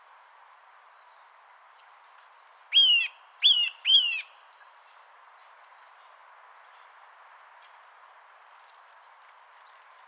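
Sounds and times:
Eurasian nuthatch Sitta europaea giving clear whistled call notes: 0:02.7 - 0:04.3.

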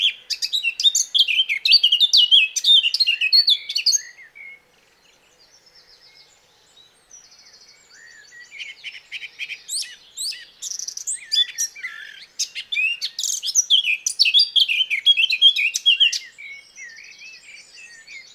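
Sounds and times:
Sylvia atricapilla Eurasian blackcap warbling song: 0:00.0 - 0:04.2, 0:08.5 - 0:18.3.

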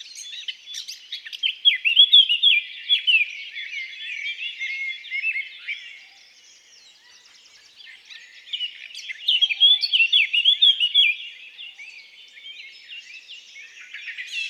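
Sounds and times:
Eurasian blackcap Sylvia atricapilla singing: 0:00.0 - 0:05.9, 0:06.8 - 0:14.4.

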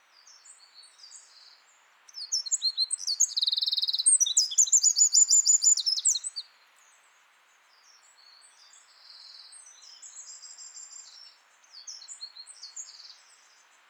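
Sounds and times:
Eurasian wren Troglodytes troglodytes singing: 0:02.2 - 0:06.4.

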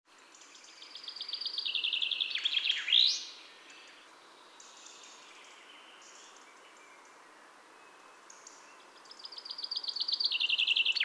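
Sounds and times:
Common chaffinch singing, Fringilla coelebs: 0:00.2 - 0:11.0.

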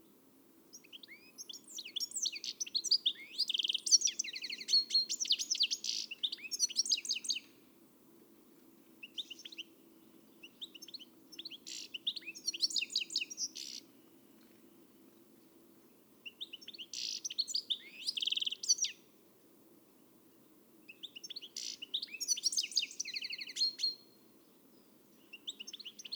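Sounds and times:
European goldfinch Carduelis carduelis song: 0:00.7 - 0:07.6, 0:09.0 - 0:14.5, 0:16.2 - 0:19.1, 0:20.9 - 0:24.2, 0:24.8 - 0:26.1.

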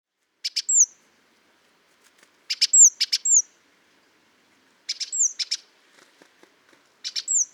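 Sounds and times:
great tit Parus major calling: 0:02.5 - 0:03.5, 0:04.9 - 0:05.6, 0:07.0 - 0:07.5.

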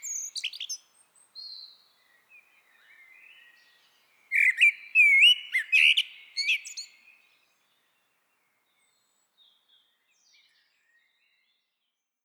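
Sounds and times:
Eurasian blackbird Turdus merula twittering and warbling: 0:00.0 - 0:01.7, 0:04.3 - 0:07.0.

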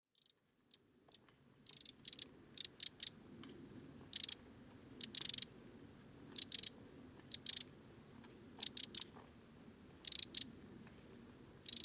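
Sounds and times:
Eurasian wren Troglodytes troglodytes sharp high ticks: 0:00.1 - 0:04.4, 0:05.0 - 0:05.5, 0:06.4 - 0:07.8, 0:08.6 - 0:10.5, 0:11.6 - 0:11.8
faint low background noise: 0:00.1 - 0:11.8.

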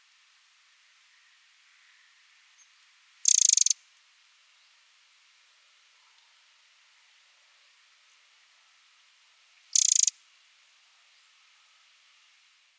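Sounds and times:
quiet background hiss: 0:00.0 - 0:12.7
Eurasian wren Troglodytes troglodytes dry high call: 0:03.2 - 0:03.8, 0:09.8 - 0:10.1.

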